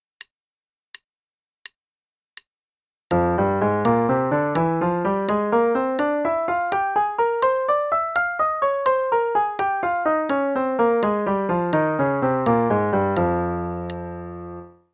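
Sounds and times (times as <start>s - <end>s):
F melodic minor scale over three octaves: 3.1s - 14.9s.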